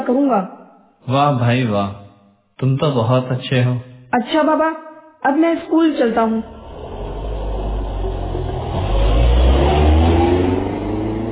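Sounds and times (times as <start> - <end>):
speech: 0.0 - 2.0, 2.6 - 6.6
car engine revving as the car drives off: 6.4 - 11.2.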